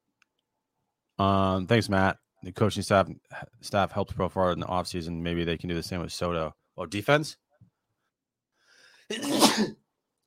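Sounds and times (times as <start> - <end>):
speech: 1.2 - 7.4, 9.1 - 9.8
loud sneeze: 9.1 - 9.8.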